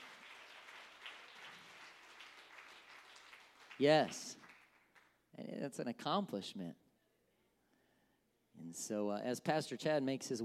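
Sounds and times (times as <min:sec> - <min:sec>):
audience applauding graduates: 0:00.0 - 0:05.1
speech: 0:03.8 - 0:04.4, 0:05.4 - 0:06.8, 0:08.7 - 0:10.4.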